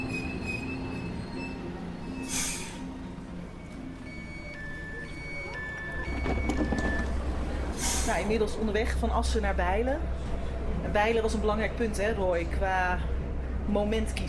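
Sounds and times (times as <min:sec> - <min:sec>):
faint high squeals and tonal whines from the train wheels: 0:00.0 - 0:07.2
passenger train rolling along the tracks from Assen toward Bijlen: 0:00.0 - 0:14.2
speech: 0:08.1 - 0:14.2.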